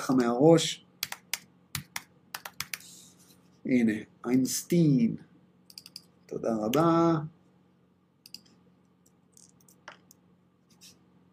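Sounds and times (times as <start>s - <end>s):
speech: 0.1s - 0.9s, 3.7s - 5.3s, 6.3s - 7.4s
fingers typing a word in Hebrew on a computer keyboard: 1.0s - 2.8s, 5.7s - 6.1s.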